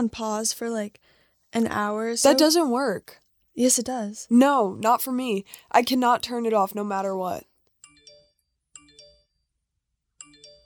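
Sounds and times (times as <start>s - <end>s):
speech: 0.0s - 7.5s
bright electronic phone notification chime: 7.8s - 9.4s, 10.2s - 10.6s.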